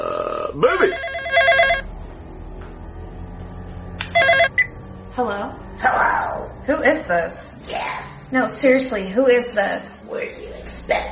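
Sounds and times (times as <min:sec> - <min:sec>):
speech: 0:00.0 - 0:01.5, 0:05.2 - 0:06.0, 0:06.7 - 0:07.5, 0:08.3 - 0:11.1
low hum: 0:00.0 - 0:11.1
telephone ringing with bright warbling electronic trill: 0:00.7 - 0:02.0, 0:04.1 - 0:04.7.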